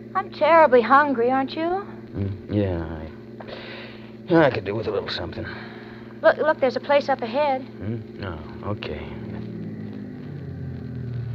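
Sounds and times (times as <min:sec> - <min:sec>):
speech: 0:00.2 - 0:03.6, 0:04.3 - 0:09.2
bus heavy engine rumbling while pulling in to a stop: 0:07.8 - 0:11.3.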